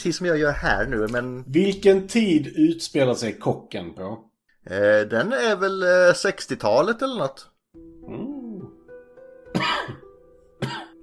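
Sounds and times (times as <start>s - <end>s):
speech: 0.0s - 8.3s
harsh raspy person coughing: 9.5s - 10.0s, 10.6s - 11.0s.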